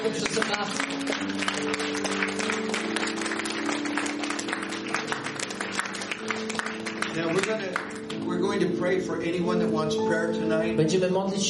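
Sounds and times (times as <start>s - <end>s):
speech: 0.0s - 1.4s, 8.8s - 11.4s
audience applause: 0.0s - 8.2s.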